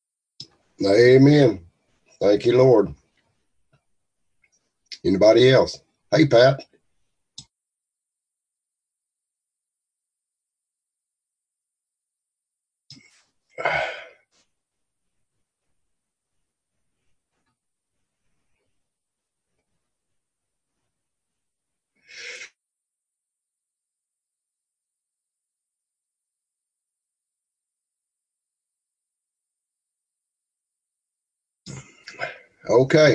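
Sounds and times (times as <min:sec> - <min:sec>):
speech: 0:00.8 - 0:03.0, 0:05.0 - 0:06.7, 0:13.6 - 0:13.9, 0:31.7 - 0:33.1
person sneezing: 0:13.6 - 0:14.2, 0:31.7 - 0:32.4.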